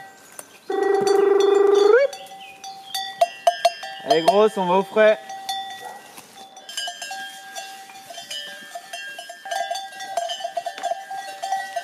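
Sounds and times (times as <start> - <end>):
bells clanking and jingling on a moving goat herd: 0.0 - 11.8
speech: 4.2 - 5.3.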